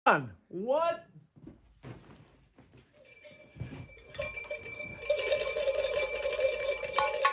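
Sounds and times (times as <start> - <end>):
speech: 0.1 - 1.1
two bells ringing with metallic clatter: 3.0 - 7.3.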